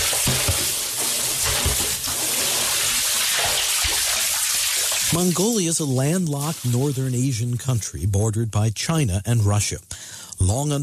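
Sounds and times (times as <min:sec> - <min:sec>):
dull knocks and thumps: 0:00.0 - 0:00.8
water sloshing and splashing while hauled from a deep well: 0:00.0 - 0:05.2
speech: 0:05.1 - 0:10.8.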